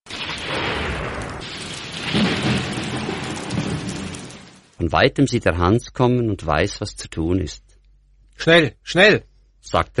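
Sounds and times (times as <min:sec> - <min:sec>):
low thunder rumbling: 0:00.1 - 0:04.8
steady heavy rain: 0:00.2 - 0:04.8
speech: 0:04.8 - 0:07.7, 0:08.4 - 0:09.9.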